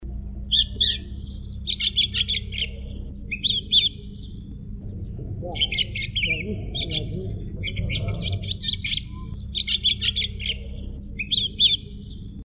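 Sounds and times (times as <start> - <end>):
Philippine myna bird calling: 0.2 - 12.4.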